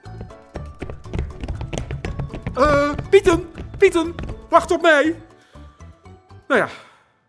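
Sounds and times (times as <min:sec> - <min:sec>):
horse hooves galloping: 0:00.0 - 0:05.2
speech: 0:02.6 - 0:05.2, 0:06.5 - 0:06.9.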